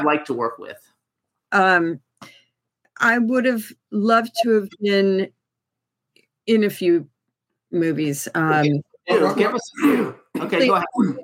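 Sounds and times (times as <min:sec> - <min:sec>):
speech: 0:00.0 - 0:02.4, 0:03.0 - 0:05.4, 0:06.4 - 0:07.1, 0:07.7 - 0:11.2
man clearing his throat: 0:09.2 - 0:11.2
man coughing: 0:09.2 - 0:11.2.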